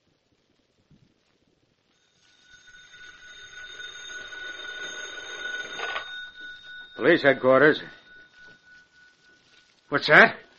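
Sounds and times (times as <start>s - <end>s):
telephone ringing with a metallic bell tone: 2.0s - 9.8s
speech: 7.0s - 8.0s, 9.9s - 10.4s.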